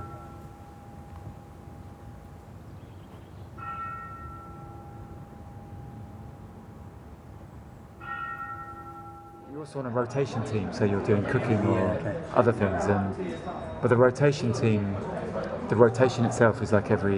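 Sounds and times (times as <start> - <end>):
low rumble: 0.0 - 9.4
mindfulness bell ringing: 0.0 - 9.8
speech: 9.6 - 17.1.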